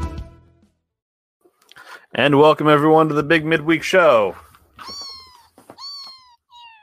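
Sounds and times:
speech: 2.1s - 5.0s
cat meowing: 4.8s - 6.8s.

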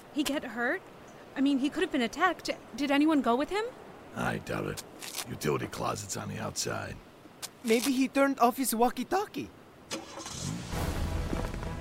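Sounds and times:
speech: 0.2s - 10.3s
car engine cranking and idling: 9.9s - 11.7s.

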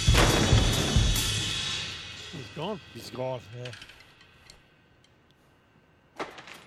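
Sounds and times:
door slamming shut: 0.1s - 1.5s
speech: 2.6s - 3.9s.

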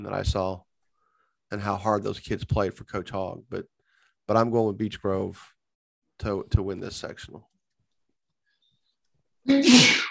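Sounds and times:
speech: 0.0s - 0.7s, 1.5s - 5.6s, 6.2s - 7.5s, 9.4s - 10.0s
person sneezing: 9.5s - 10.0s.

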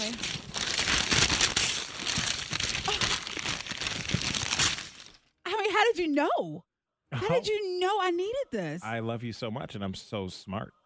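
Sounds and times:
wrapping paper crinkling as a gift is unwrapped: 0.0s - 5.3s
speech: 6.0s - 10.8s.

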